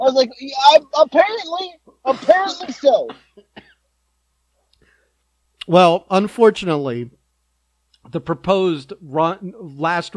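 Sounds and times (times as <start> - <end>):
speech: 0.0 - 3.2, 5.7 - 7.2, 8.1 - 10.1
person coughing harshly: 2.3 - 3.8.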